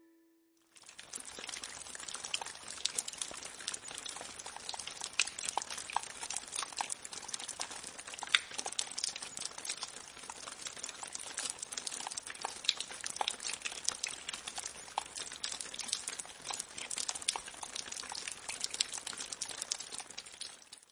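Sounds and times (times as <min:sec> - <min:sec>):
steady rain pattering: 0:00.6 - 0:20.9.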